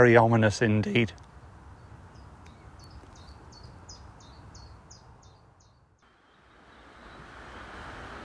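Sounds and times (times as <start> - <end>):
speech: 0.0 - 1.3
bird repeating high chirps: 1.7 - 7.3
river rushing: 6.1 - 8.2.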